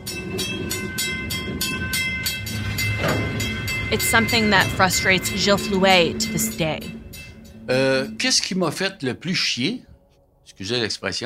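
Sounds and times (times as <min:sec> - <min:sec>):
train wheels clacking on rails: 0:00.0 - 0:08.4
speech: 0:03.9 - 0:07.0, 0:07.7 - 0:09.9, 0:10.6 - 0:11.2.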